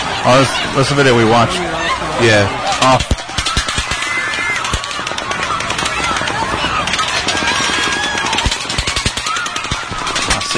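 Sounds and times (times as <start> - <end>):
speech: 0.2 - 3.2
rapid overlapping gunfire from two guns: 2.8 - 10.5.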